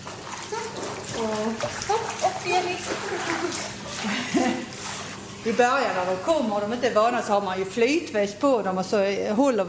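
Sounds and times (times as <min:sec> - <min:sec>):
female dog paddling and splashing during swimming training: 0:00.0 - 0:06.4
speech: 0:05.4 - 0:09.6.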